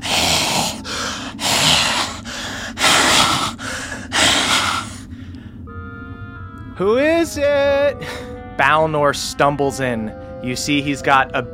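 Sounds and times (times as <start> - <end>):
voice imitating raspy breathing outside the door of a stump: 0.0 - 5.1
speech: 6.8 - 11.5.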